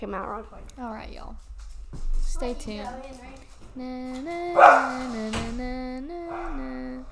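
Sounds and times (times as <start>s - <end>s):
speech: 0.0s - 7.1s
dog barking in a long whiny vocalization: 4.6s - 5.1s.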